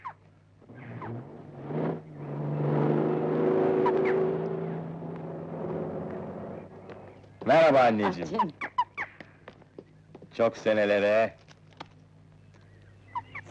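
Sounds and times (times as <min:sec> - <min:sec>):
car engine revving and accelerating: 0:00.6 - 0:07.2
speech: 0:07.5 - 0:08.7, 0:10.4 - 0:11.5.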